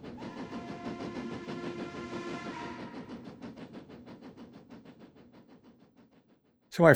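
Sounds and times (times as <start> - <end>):
rhythmic clatter of train wheels on the rails: 0.0 - 6.3
train horn sounding in a long chord-like blast: 0.2 - 3.0
speech: 6.8 - 6.9.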